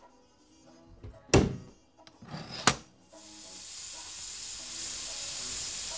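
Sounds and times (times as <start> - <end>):
sharp knocks of a cabinet door shutting: 1.0 - 1.7
hissing steam in a steam cabinet: 3.0 - 5.9.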